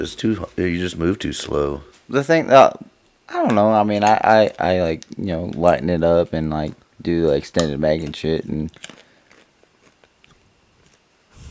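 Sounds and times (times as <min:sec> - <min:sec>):
speech: 0:00.0 - 0:09.0
crunchy snack chewed into a microphone: 0:03.4 - 0:11.5.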